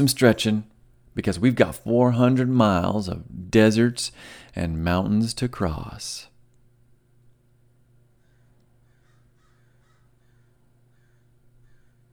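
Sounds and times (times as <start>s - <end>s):
speech: 0.0s - 6.3s
low hum: 0.0s - 12.1s
crows cawing: 8.2s - 12.1s.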